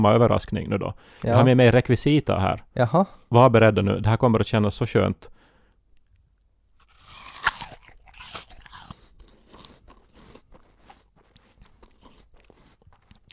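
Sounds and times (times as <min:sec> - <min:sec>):
speech: 0:00.0 - 0:05.4
teeth biting into a crunchy apple: 0:06.8 - 0:13.3.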